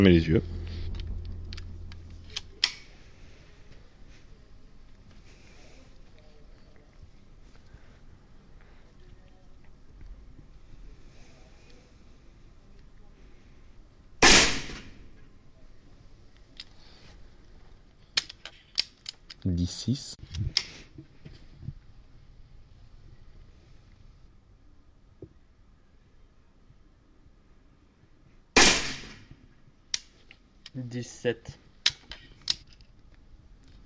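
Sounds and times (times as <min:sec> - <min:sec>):
speech: 0:00.0 - 0:00.6, 0:19.7 - 0:20.6, 0:30.8 - 0:31.6
faint outdoor background: 0:00.0 - 0:33.8
sport-shooting rifle shots: 0:14.2 - 0:15.0, 0:28.6 - 0:29.3
mechanical clicks and handling noises of rifle reloading: 0:18.2 - 0:19.5, 0:31.8 - 0:32.9.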